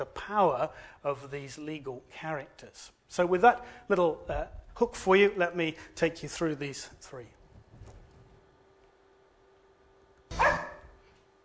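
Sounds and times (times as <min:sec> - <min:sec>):
speech: 0:00.0 - 0:07.4
faint steady hum: 0:00.0 - 0:11.4
dog barking: 0:10.4 - 0:11.0.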